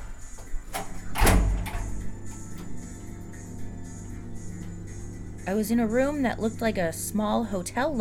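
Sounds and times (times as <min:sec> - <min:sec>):
door handle click: 0:00.7 - 0:02.0
speech: 0:05.5 - 0:08.0.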